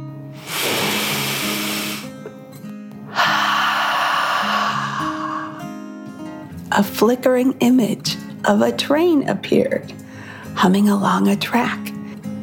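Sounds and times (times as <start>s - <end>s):
deep slow breath in and out: 0.4s - 2.2s, 3.1s - 6.4s, 10.1s - 10.5s
speech: 6.8s - 10.0s, 10.6s - 11.9s.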